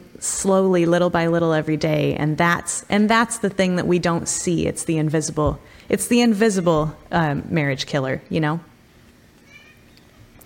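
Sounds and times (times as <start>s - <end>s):
speech: 0.3s - 8.7s
cat letting out a soft short meow: 9.5s - 10.0s.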